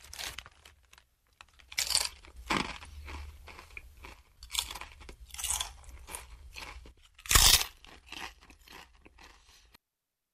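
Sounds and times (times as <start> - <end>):
crunching and wet chewing of a juicy apple: 0.0 - 9.8.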